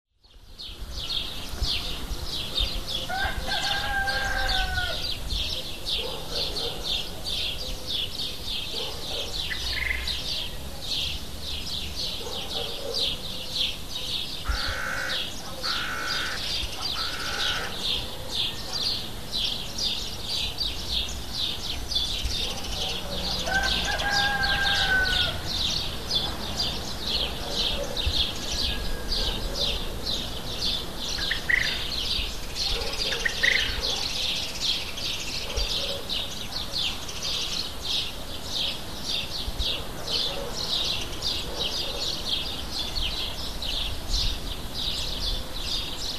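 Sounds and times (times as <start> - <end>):
dawn chorus of birds in Cyprus: 0.1 - 46.1.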